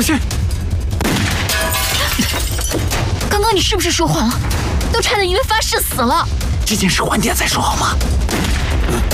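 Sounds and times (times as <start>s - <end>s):
speech: 0.0s - 0.4s, 2.2s - 9.0s
rapid gunshots: 1.0s - 1.5s, 8.2s - 8.9s.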